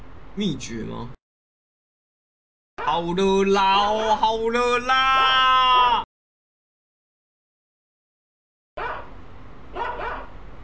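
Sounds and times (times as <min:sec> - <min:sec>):
speech: 0:00.4 - 0:01.2, 0:02.9 - 0:05.6
dogs barking: 0:02.8 - 0:03.0, 0:08.8 - 0:09.1, 0:09.7 - 0:10.4.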